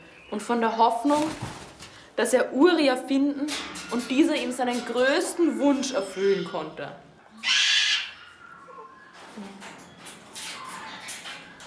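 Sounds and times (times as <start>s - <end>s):
speech: 0.3s - 1.6s, 2.2s - 7.6s
bird screeching call: 7.4s - 9.2s.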